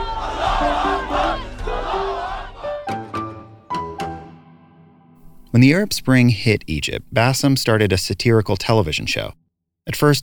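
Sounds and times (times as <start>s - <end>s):
large crowd in Tahrir Square Cairo Egypt roaring and chanting freedom: 0.0s - 3.2s
speech: 5.6s - 10.2s.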